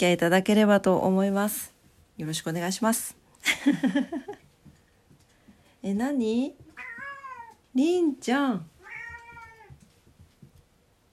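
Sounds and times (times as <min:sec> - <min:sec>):
speech: 0:00.0 - 0:04.4, 0:05.8 - 0:06.6, 0:07.7 - 0:08.7
laughter: 0:03.5 - 0:04.4
cat meowing: 0:06.8 - 0:07.6, 0:08.8 - 0:09.8.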